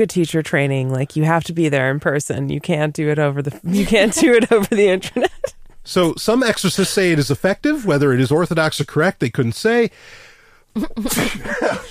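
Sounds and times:
speech: 0.0 - 10.2, 10.8 - 11.8
laughter: 3.7 - 7.2, 10.9 - 11.8
loud sharp breathy sneeze: 10.8 - 11.8.

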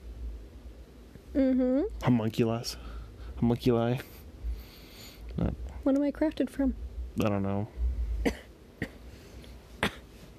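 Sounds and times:
low hum: 0.0 - 10.3
speech: 1.4 - 4.2, 5.4 - 8.4
dry coughs into a phone microphone: 8.2 - 9.0, 9.8 - 10.1.

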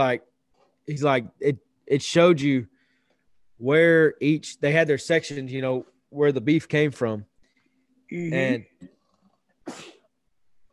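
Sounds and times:
speech: 0.0 - 2.7, 3.6 - 7.3, 8.1 - 8.7, 9.7 - 9.9
loud sharp sneeze: 9.6 - 10.1.

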